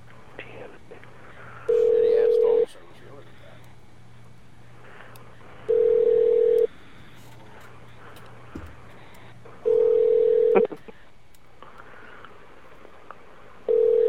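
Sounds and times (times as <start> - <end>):
telephone ringback tones: 1.7 - 2.7, 5.7 - 6.7, 9.7 - 10.7, 13.7 - 14.0.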